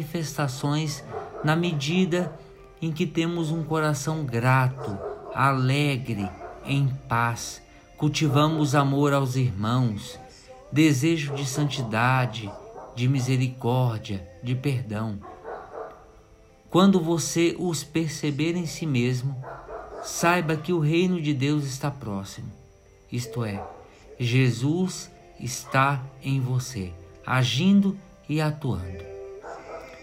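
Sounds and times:
speech: 0.0 - 15.3, 16.7 - 29.1
dog barking in the background during a prayer: 0.8 - 2.6, 4.2 - 7.0, 11.0 - 13.6, 15.2 - 16.1, 19.4 - 20.9, 23.4 - 24.2, 25.5 - 26.1, 29.4 - 30.0.

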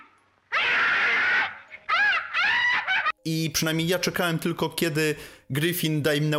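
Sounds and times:
several people screaming and wailing in panic in an old film: 0.5 - 3.1
speech: 3.3 - 6.3.

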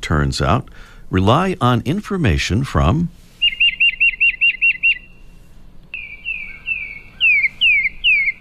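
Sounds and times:
speech: 0.1 - 3.2
tufted titmouse calls: 3.4 - 5.2, 5.9 - 8.3.

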